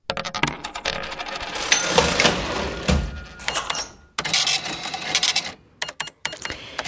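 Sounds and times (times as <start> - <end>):
jingling coins spilling: 0.2 - 2.6, 3.2 - 4.1
mechanical cash register ringing open: 0.2 - 6.8.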